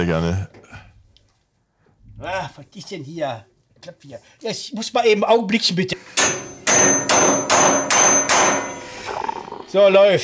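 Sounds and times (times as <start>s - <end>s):
speech: 0.0s - 0.6s, 2.2s - 7.8s, 9.7s - 10.2s
metallic bangs: 6.1s - 9.0s.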